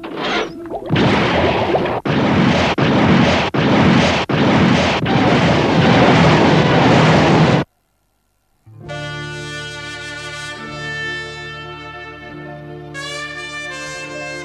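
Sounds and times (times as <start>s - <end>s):
missile launch roar: 0.1s - 7.7s.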